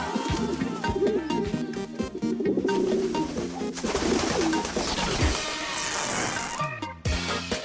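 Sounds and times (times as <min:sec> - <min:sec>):
loud music: 0:00.0 - 0:07.6
pigeons cooing: 0:00.1 - 0:05.3.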